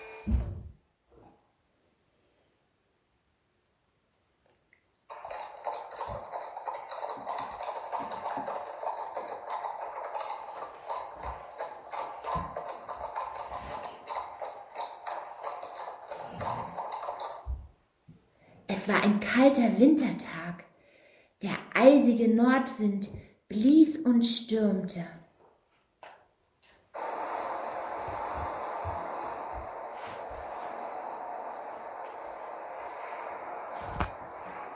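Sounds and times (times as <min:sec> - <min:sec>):
horse hooves clip-clopping: 0:05.1 - 0:17.8, 0:27.0 - 0:34.7
speech: 0:18.8 - 0:20.4, 0:21.8 - 0:25.2.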